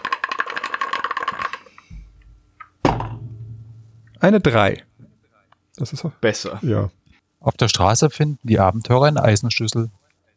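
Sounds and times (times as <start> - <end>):
dice rattling: 0.0 - 1.8
speech: 4.2 - 4.9, 5.8 - 10.0.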